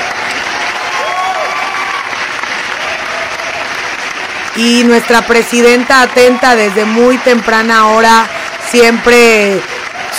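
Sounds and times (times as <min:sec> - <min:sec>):
crowd applause: 0:00.0 - 0:10.1
speech: 0:04.6 - 0:09.7.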